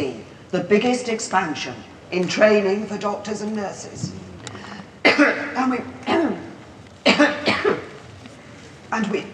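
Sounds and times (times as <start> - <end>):
speech: 0.0 - 4.3, 5.2 - 6.2, 9.0 - 9.3
harsh throaty coughing fit during a speech: 5.0 - 5.5, 7.1 - 8.0.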